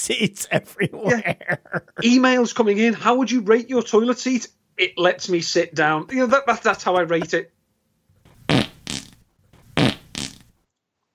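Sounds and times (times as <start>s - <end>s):
laughter: 0.0s - 2.2s
speech: 0.0s - 7.6s
loud raspy fart sound effects: 8.3s - 10.5s.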